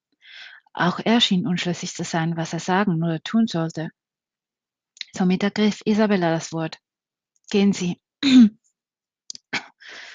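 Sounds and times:
speech: 0:00.8 - 0:04.0, 0:05.2 - 0:06.8, 0:07.5 - 0:08.6
person clearing throat: 0:08.2 - 0:08.5.

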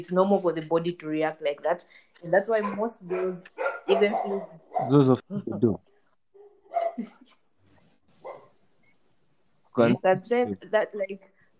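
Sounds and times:
speech: 0:00.0 - 0:05.9, 0:07.0 - 0:07.4, 0:09.8 - 0:11.3
dog barking: 0:02.6 - 0:05.0, 0:06.4 - 0:07.0, 0:08.2 - 0:08.6.

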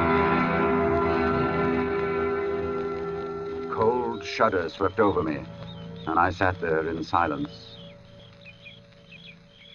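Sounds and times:
birds chirping: 0:00.2 - 0:09.7
crickets droning: 0:02.3 - 0:09.7
speech: 0:04.4 - 0:07.7.

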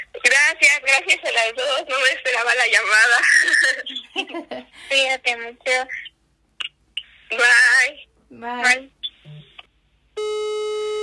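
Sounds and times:
speech: 0:00.5 - 0:06.0, 0:07.3 - 0:09.4
laughter: 0:03.1 - 0:04.8
loud steady telephone line tone with rich harmonics: 0:10.2 - 0:11.0.

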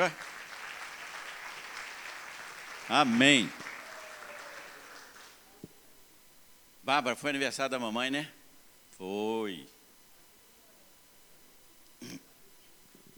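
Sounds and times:
speech: 0:00.0 - 0:00.3, 0:02.9 - 0:03.6, 0:06.9 - 0:08.4, 0:09.0 - 0:09.7
audience applauding: 0:00.0 - 0:05.5.

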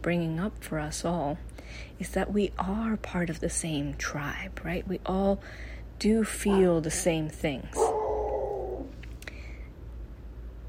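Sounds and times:
speech: 0:00.0 - 0:07.9
steady low rumble: 0:00.0 - 0:10.6
dog howling outside: 0:06.5 - 0:07.1, 0:07.8 - 0:09.0.

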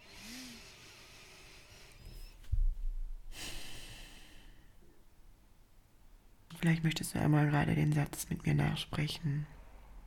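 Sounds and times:
person taking a deep breath and breathing out during a calming exercise: 0:03.3 - 0:04.8
speech: 0:06.6 - 0:09.6.

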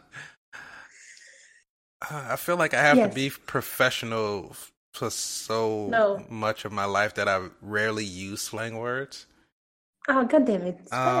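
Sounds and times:
deep breathy inhale: 0:00.1 - 0:01.7
speech: 0:02.1 - 0:09.3, 0:10.1 - 0:11.1.

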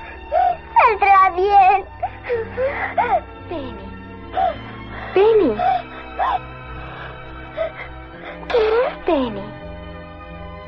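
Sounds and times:
young girl crying in an animated film: 0:00.3 - 0:06.5, 0:07.5 - 0:09.3
speech: 0:01.3 - 0:04.6, 0:05.2 - 0:06.6, 0:08.5 - 0:09.5.

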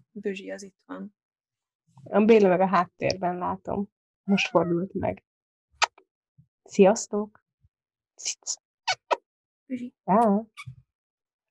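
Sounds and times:
speech: 0:00.2 - 0:01.2, 0:02.0 - 0:05.3, 0:06.7 - 0:07.4, 0:08.2 - 0:08.6, 0:09.7 - 0:10.8
cat meowing: 0:04.3 - 0:04.8.

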